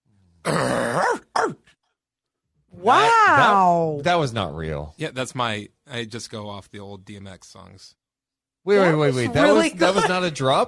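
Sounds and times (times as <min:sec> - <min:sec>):
person imitating a dog barking with rough throaty vocal barks: 0:00.9 - 0:01.6
speech: 0:02.8 - 0:08.0, 0:08.6 - 0:10.6.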